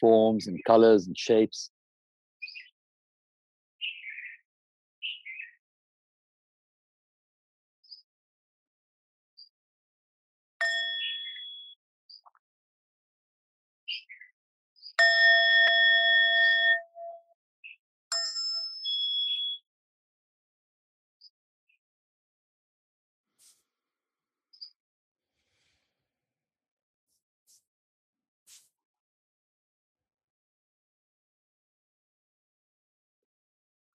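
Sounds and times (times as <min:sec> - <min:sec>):
speech: 0:00.0 - 0:01.7
bell ringing: 0:10.6 - 0:11.4, 0:15.0 - 0:17.2.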